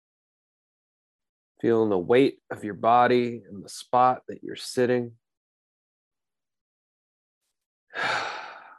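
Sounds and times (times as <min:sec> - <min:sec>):
speech: 0:01.6 - 0:05.2
deep breathy exhale in a guided breathing exercise: 0:08.0 - 0:08.7.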